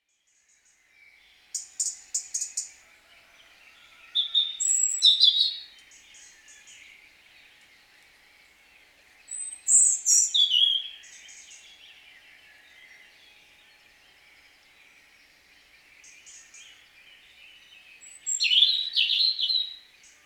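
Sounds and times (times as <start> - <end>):
European robin song: 4.4 - 20.2.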